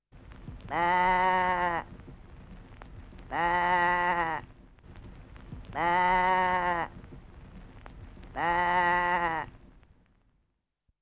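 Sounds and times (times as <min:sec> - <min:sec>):
sheep bleating: 0:00.7 - 0:01.9, 0:03.3 - 0:04.5, 0:05.7 - 0:07.0, 0:08.4 - 0:09.6.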